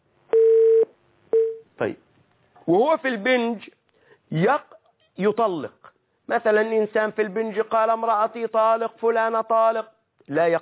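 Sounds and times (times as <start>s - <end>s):
telephone line beeps as an incoming call connects: 0.3s - 1.6s
speech: 1.8s - 10.6s.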